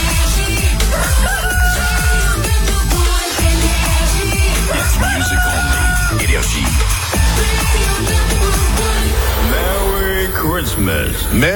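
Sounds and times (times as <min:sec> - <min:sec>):
dense thumping music track: 0:00.0 - 0:11.5
rooster crowing: 0:00.9 - 0:02.5, 0:04.7 - 0:06.2
speech: 0:11.3 - 0:11.5.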